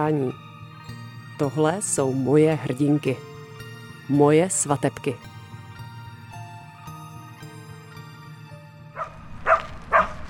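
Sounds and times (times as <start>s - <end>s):
speech: 0.0s - 0.4s, 1.4s - 3.3s, 4.1s - 5.3s
short sharp dog barks: 9.0s - 10.2s.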